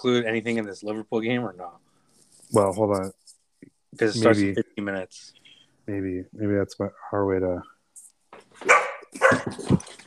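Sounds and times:
speech: 0:00.0 - 0:01.9, 0:02.5 - 0:07.7, 0:08.3 - 0:10.0
dog barking with short sharp yaps: 0:08.6 - 0:09.5.

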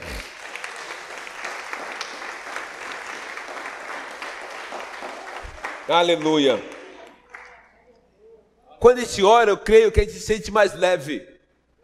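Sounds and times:
crowd of many people applauding: 0:00.0 - 0:07.6
speech: 0:05.9 - 0:06.7, 0:08.9 - 0:11.3.

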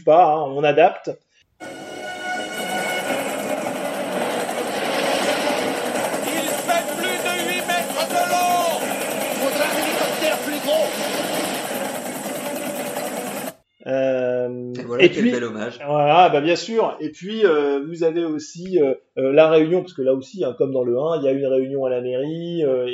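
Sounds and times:
speech: 0:00.0 - 0:01.8, 0:13.8 - 0:22.9
helicopter rotor whir: 0:01.6 - 0:13.6.

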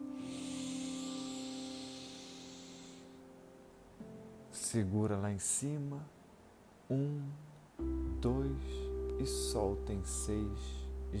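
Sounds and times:
deep breath drawn in to fill the belly: 0:00.1 - 0:03.2
speech: 0:04.7 - 0:06.2, 0:06.9 - 0:11.1.

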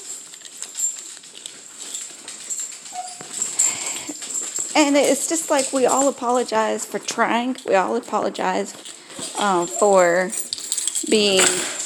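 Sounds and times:
scuffling and clicking: 0:00.0 - 0:11.8
puppies in a crate whimpering and whining: 0:02.4 - 0:07.0, 0:09.4 - 0:10.2
speech: 0:04.8 - 0:10.4, 0:11.0 - 0:11.7.

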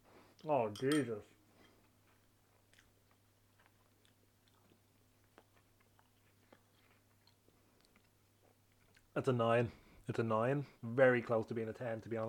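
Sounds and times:
speech: 0:00.4 - 0:01.4, 0:09.2 - 0:12.2
chewing soggy Cap'n Crunch Fruity Bits cereal: 0:01.6 - 0:09.2.

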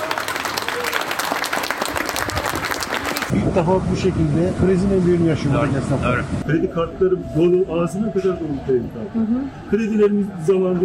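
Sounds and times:
café and restaurant workers applauding in protest in Ankara: 0:00.0 - 0:03.3
speech: 0:03.3 - 0:10.8.

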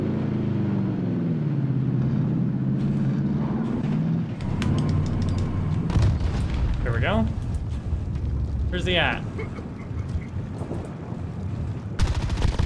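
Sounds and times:
heavy truck engine rumbling and revving in a video game: 0:00.1 - 0:12.3
sharp clicks: 0:04.4 - 0:05.9
speech: 0:07.0 - 0:07.4, 0:08.7 - 0:09.6.

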